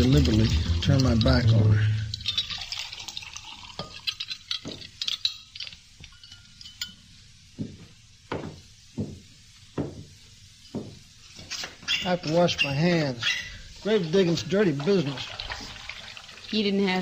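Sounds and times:
lemonade poured from pitcher into glasses: 0.0 - 6.9, 13.8 - 17.0
speech: 0.1 - 2.0, 12.1 - 15.4, 16.5 - 17.0.

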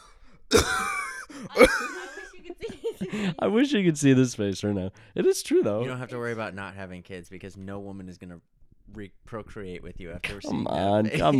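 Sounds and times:
open-mouthed coughs: 0.0 - 2.0
speech: 1.5 - 1.9, 3.0 - 11.3
laughter: 1.5 - 3.4, 11.1 - 11.3
quiet breathy sounds: 3.0 - 3.4.

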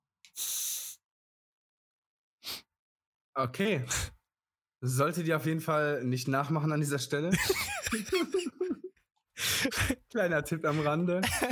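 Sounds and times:
deodorant aerosol spray hissing: 0.3 - 1.0
speech: 3.4 - 4.2, 4.8 - 8.8, 9.6 - 11.5
laughter: 7.3 - 8.9, 10.7 - 11.5.

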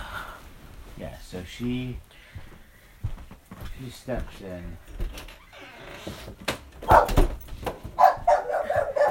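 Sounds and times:
speech: 1.4 - 2.1, 3.8 - 5.2, 6.0 - 6.5
dog barking: 6.8 - 7.3, 8.0 - 9.0.

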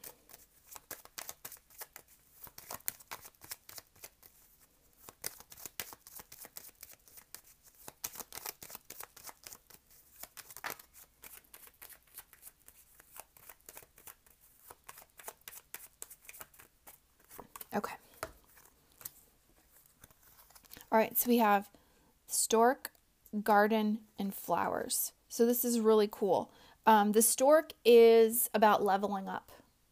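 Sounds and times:
deck of reading cards being shuffled and drawn: 0.0 - 20.9
speech: 17.8 - 18.0, 20.9 - 21.8, 22.5 - 29.5.

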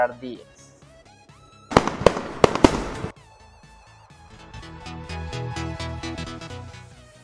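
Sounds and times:
speech: 0.0 - 0.5
steady music: 0.0 - 7.2
fireworks exploding: 1.7 - 3.1.

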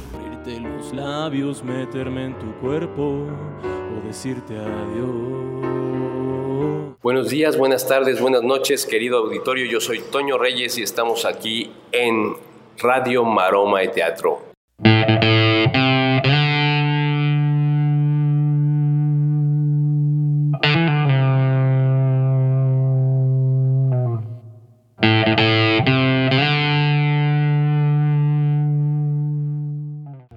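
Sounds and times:
speech: 0.5 - 15.0
heavily distorted electric guitar chords in rock style: 14.8 - 30.3.

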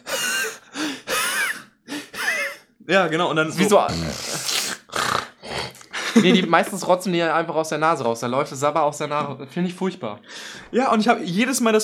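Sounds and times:
person imitating heavy laboured breathing of a sick child with bronchitis: 0.0 - 2.7, 3.8 - 6.1
speech: 2.9 - 4.3, 6.2 - 11.8.

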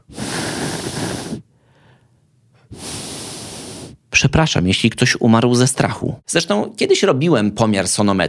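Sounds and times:
person voicing whooshing hisses imitating whistling of wing feathers: 0.0 - 1.5, 2.7 - 4.0
speech: 4.2 - 8.2.

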